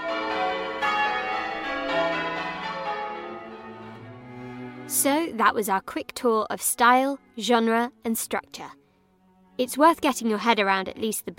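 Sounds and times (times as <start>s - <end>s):
wedding church bells pealing: 0.0s - 7.9s
speech: 5.0s - 8.8s, 9.6s - 11.3s.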